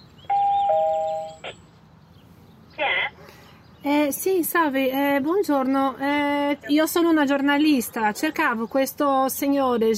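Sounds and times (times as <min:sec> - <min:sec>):
electronic doorbell buzzing at an apartment building: 0:00.3 - 0:01.5
speech: 0:03.8 - 0:09.9.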